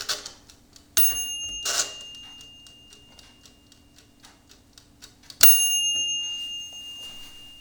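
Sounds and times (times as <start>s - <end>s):
mechanical timer on a halogen convection oven ticking: 0.0s - 7.6s
bright metallic timer bell dings of a halogen convection oven: 1.0s - 3.7s, 5.4s - 7.6s.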